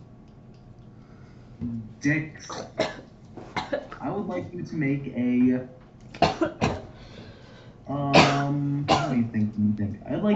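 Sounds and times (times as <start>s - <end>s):
speech: 1.6s - 2.9s, 3.7s - 5.8s, 6.4s - 6.8s, 7.9s - 10.3s
person coughing: 2.4s - 4.5s, 6.2s - 6.9s, 8.1s - 9.3s.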